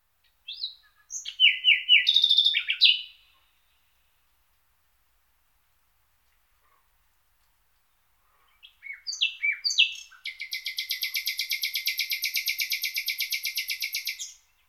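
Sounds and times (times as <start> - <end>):
nightingale singing in the Saar: 0.2 - 4.1, 7.8 - 14.6.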